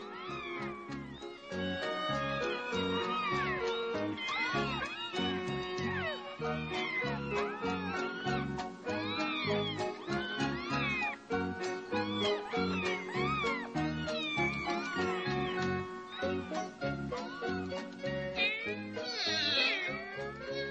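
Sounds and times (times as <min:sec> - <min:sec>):
kittens meowing and yowling at each other: 0:00.0 - 0:20.6.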